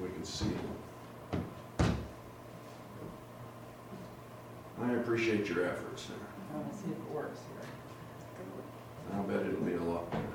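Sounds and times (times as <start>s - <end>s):
speech: 0.2s - 0.9s, 4.8s - 10.3s
door swinging open with a thump: 1.4s - 2.1s.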